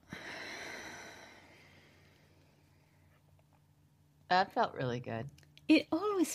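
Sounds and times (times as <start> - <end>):
faint airy deep breath: 0.0 - 3.0
speech: 4.3 - 6.3.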